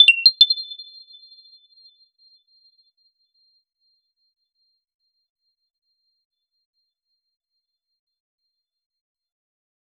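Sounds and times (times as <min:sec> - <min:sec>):
32 bit PS1 retro game menu sound: 0:00.0 - 0:00.5.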